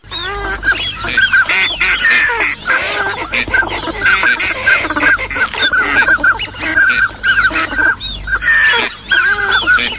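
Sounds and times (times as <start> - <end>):
pintail duck calling: 0.0 - 9.9.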